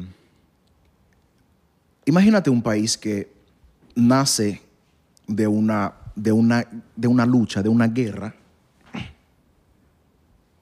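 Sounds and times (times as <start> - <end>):
speech: 2.1 - 3.4, 4.0 - 4.7, 5.3 - 8.4
single quick sneeze: 8.8 - 9.4.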